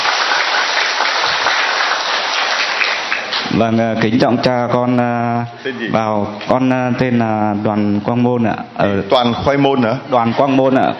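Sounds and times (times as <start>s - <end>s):
loud dense applause from a gathering: 0.0s - 3.5s
speech: 3.6s - 10.9s.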